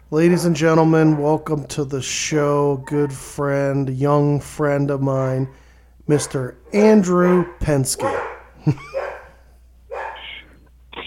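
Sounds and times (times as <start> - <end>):
speech: 0.1 - 8.9
dog barking with yelping barks: 6.2 - 10.4.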